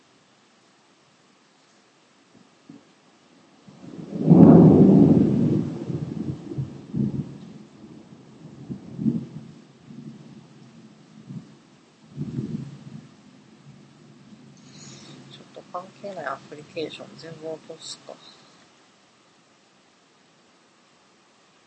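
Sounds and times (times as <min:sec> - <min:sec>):
thunder rumbling: 0:03.6 - 0:18.5
speech: 0:15.8 - 0:18.4.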